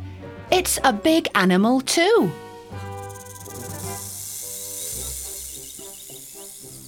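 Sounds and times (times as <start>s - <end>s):
bright melody with sustained tones: 0.0s - 6.8s
speech: 0.6s - 2.4s
snake hissing: 2.6s - 6.8s.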